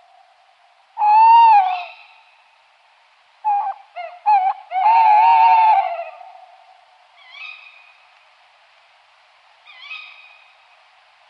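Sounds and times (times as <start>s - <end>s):
tawny owl hooting: 1.0s - 2.2s, 3.4s - 7.7s.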